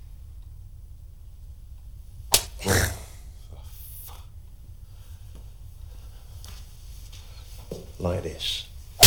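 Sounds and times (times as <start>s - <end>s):
breathy rush of noise: 1.9s - 7.7s
back-handed slap to the face with the back of the right hand: 2.3s - 2.6s
speech: 7.7s - 8.7s.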